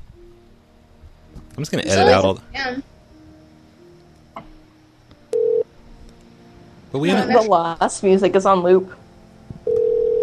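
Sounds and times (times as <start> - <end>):
faint hum: 0.0 - 10.2
speech: 1.6 - 2.9, 6.9 - 9.0
telephone line tone from an unanswered phone call: 5.3 - 5.7, 9.6 - 10.2.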